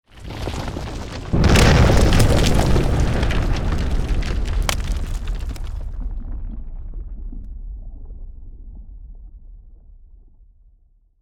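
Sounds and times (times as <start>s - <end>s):
volcanic debris: 0.1s - 6.1s
volcano lava eruption explosion: 0.1s - 7.8s.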